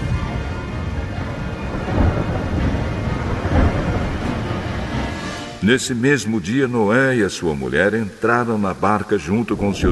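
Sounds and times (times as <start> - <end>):
deep rolling thunder: 0.0 - 6.5, 9.4 - 9.9
heavy flood rain falling on the earth: 0.0 - 9.9
speech: 5.6 - 9.9.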